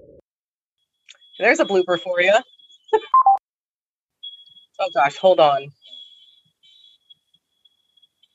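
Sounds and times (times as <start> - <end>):
smoke alarm going off: 1.1 - 3.4, 4.2 - 8.1
speech: 1.4 - 3.1, 4.8 - 5.9.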